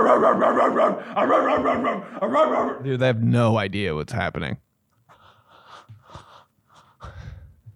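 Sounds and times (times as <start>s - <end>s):
person imitating a dog barking: 0.0s - 2.9s
speech: 0.2s - 4.6s.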